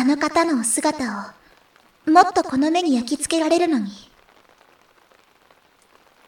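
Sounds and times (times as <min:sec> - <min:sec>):
rain pattering on an umbrella: 0:00.0 - 0:06.2
speech: 0:00.1 - 0:01.4, 0:02.0 - 0:04.1.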